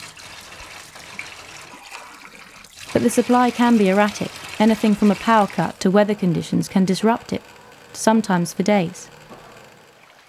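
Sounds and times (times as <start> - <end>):
water pouring steadily from a tap: 0.0 - 6.1
speech: 3.0 - 9.2.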